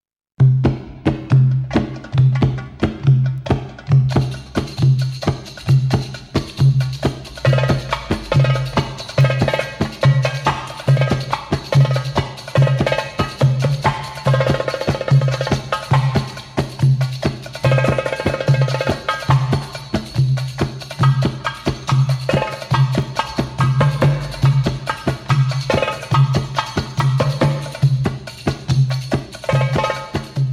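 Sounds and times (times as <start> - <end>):
drum solo: 0.4 - 30.5.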